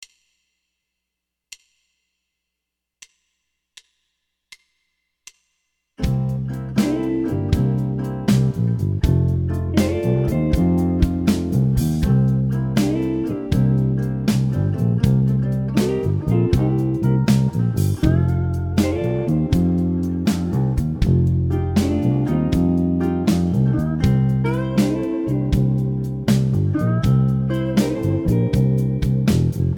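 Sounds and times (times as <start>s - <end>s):
slow blues music: 6.0s - 29.7s.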